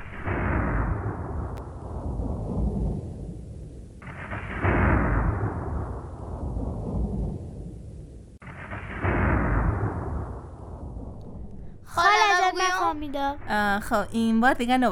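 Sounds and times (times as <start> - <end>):
heavy rolls of thunder: 0.0 - 11.9
speech: 13.0 - 14.9.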